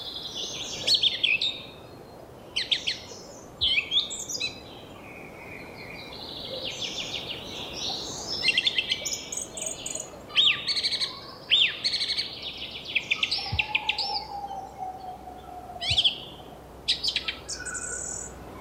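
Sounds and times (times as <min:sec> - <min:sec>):
song thrush singing from a treetop: 0:00.0 - 0:18.5
steady outdoor hiss: 0:00.0 - 0:18.5.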